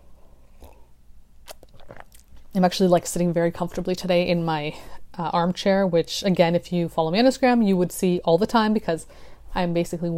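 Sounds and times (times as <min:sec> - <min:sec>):
faint mouth sounds: 0:00.0 - 0:02.6
low room hum: 0:00.0 - 0:10.1
sipping coffee from a cup: 0:00.4 - 0:02.6
swallow: 0:00.5 - 0:02.5
speech: 0:02.6 - 0:10.1.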